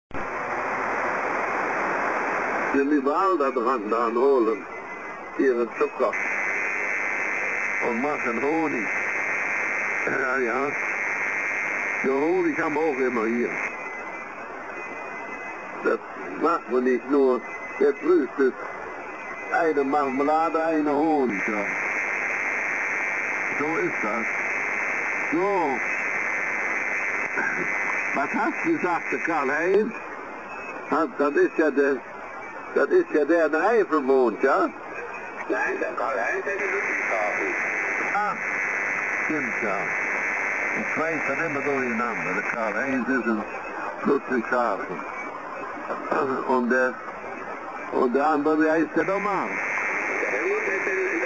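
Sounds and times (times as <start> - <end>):
local radio interference on the 80 meter band: 0.1 - 51.2.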